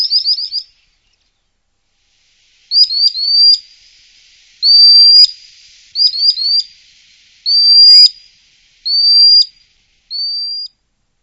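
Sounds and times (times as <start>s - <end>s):
common sandpiper song: 2.4s - 10.8s.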